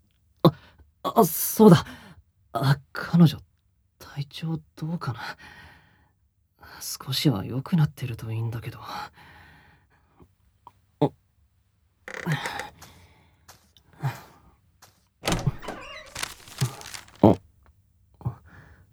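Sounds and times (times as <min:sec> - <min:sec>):
speech: 0:01.2 - 0:02.0, 0:02.6 - 0:03.5, 0:04.2 - 0:05.7, 0:06.8 - 0:09.3, 0:11.0 - 0:11.2
folded paper memo unfolding with crisp rustles: 0:15.2 - 0:17.4.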